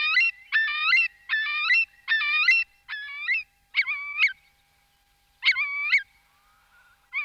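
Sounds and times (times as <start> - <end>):
Eurasian curlew calling: 0.0 - 4.6, 5.4 - 7.2.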